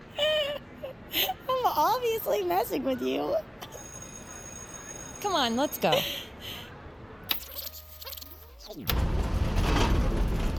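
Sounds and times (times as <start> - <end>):
speech: 1.2 - 3.5, 5.2 - 6.2, 8.7 - 9.1
old car creaking and rattling over rough ground: 8.1 - 10.5.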